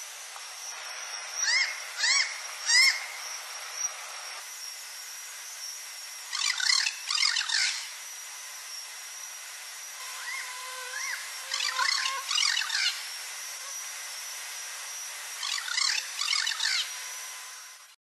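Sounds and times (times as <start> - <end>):
sharp harmonic bird calls with softer tonal notes: 1.4 - 3.2, 6.3 - 7.9, 10.2 - 13.0, 15.4 - 17.0.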